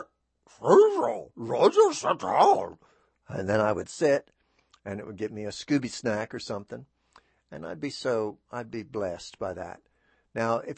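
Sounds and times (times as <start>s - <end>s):
speech: 0.5s - 6.9s, 7.5s - 10.7s
human voice imitating a dog barking: 0.6s - 2.6s.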